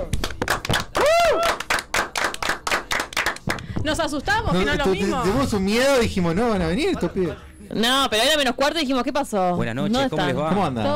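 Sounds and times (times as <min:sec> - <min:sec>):
small crowd clapping rhythmically: 0:00.0 - 0:03.7
speech: 0:03.8 - 0:10.9.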